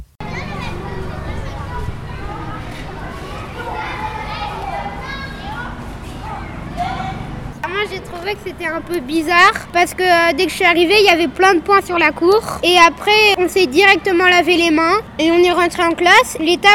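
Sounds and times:
sharper cries of children rising above the din: 0:00.2 - 0:07.4
children shouting and laughing in a schoolyard: 0:00.2 - 0:16.7
speech: 0:08.2 - 0:16.7.

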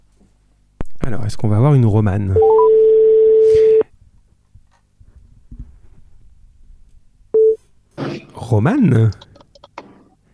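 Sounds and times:
speech: 0:01.1 - 0:02.6, 0:08.5 - 0:09.3
telephone ringback tone during outgoing call: 0:02.4 - 0:03.8.

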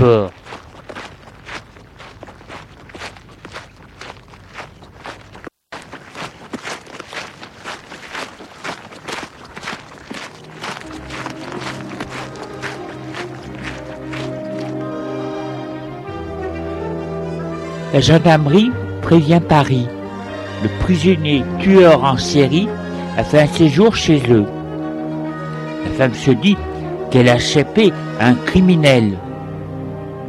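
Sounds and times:
speech: 0:00.0 - 0:00.4, 0:18.0 - 0:20.0, 0:20.6 - 0:24.6, 0:26.0 - 0:29.2
man's footsteps running across open countryside: 0:00.0 - 0:27.0
sustained musical tones: 0:10.4 - 0:30.2.

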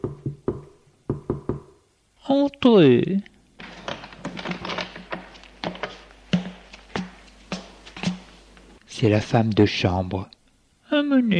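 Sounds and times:
sharp raps knocking on a door: 0:00.0 - 0:01.8
speech: 0:02.3 - 0:03.3, 0:09.0 - 0:10.4, 0:11.1 - 0:11.3.

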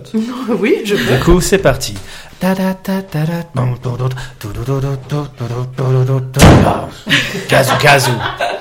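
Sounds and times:
speech: 0:00.0 - 0:08.5
person making voiced sing-song vocal sounds: 0:01.2 - 0:07.1
door shutting with a solid thud: 0:06.4 - 0:06.9
laughter: 0:07.0 - 0:08.5.

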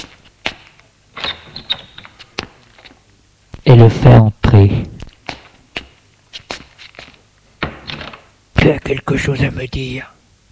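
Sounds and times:
front door hinge squeaking: 0:01.2 - 0:02.2
speech: 0:03.9 - 0:04.8, 0:09.3 - 0:10.2.

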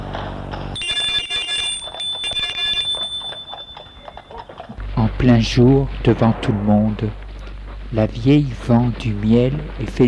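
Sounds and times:
electronic doorbell ringing at an old woman's house in a village: 0:00.8 - 0:04.8
speech: 0:05.2 - 0:07.2, 0:07.9 - 0:10.0.

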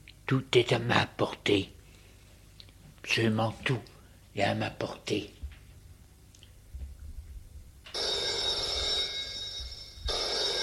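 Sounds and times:
speech: 0:00.3 - 0:01.8, 0:03.0 - 0:05.4
telephone ringing: 0:07.9 - 0:10.6.

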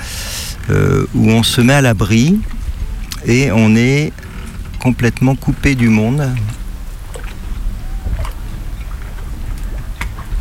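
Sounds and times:
small boat low rumble on open water: 0:00.0 - 0:10.3
water sloshing against the hull: 0:00.0 - 0:10.3
speech: 0:00.7 - 0:02.6, 0:03.2 - 0:06.6.

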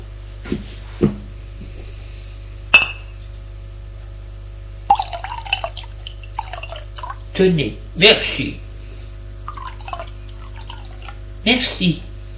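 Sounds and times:
glass clinking as water is served from a bottle: 0:02.8 - 0:03.1, 0:04.9 - 0:05.7
water pouring from a bottle with small splashes and drips: 0:04.9 - 0:07.3, 0:09.5 - 0:11.2
speech: 0:07.4 - 0:08.6, 0:11.4 - 0:12.1.

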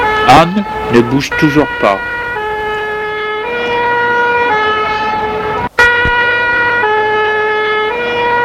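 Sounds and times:
ambulance siren alternating between two pitches: 0:00.0 - 0:08.4
low road rumble: 0:00.0 - 0:08.4
speech: 0:00.3 - 0:02.2.

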